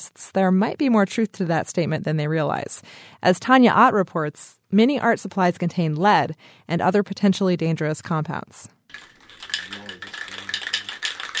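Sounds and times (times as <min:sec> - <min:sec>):
speech: 0:00.0 - 0:09.9
spray paint can shaken by hand with its mixing ball rattling: 0:08.9 - 0:11.3.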